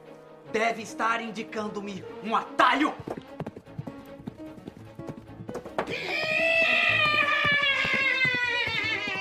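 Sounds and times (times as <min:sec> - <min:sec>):
speech: 0:00.5 - 0:03.2
horse hooves clip-clopping in the woods: 0:02.9 - 0:09.1
horse whinnying in the woods: 0:05.8 - 0:09.1.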